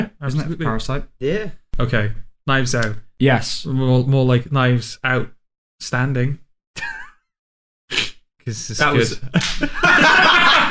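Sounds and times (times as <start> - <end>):
speech: 0.0 - 7.0, 7.9 - 10.7
laughter: 9.1 - 10.7
person slapping their own head: 9.4 - 9.7.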